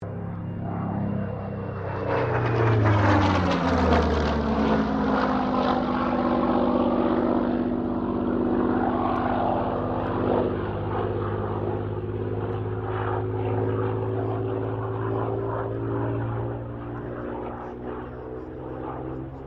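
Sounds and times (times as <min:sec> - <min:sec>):
Supermarine Spitfire Mk XVI aircraft engine: 0:00.0 - 0:19.4.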